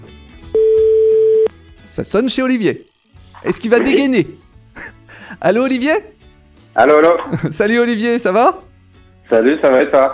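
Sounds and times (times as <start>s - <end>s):
telephone ringing tone on the line: 0.6s - 1.5s
speech: 2.0s - 6.2s, 6.8s - 8.6s, 9.3s - 10.1s.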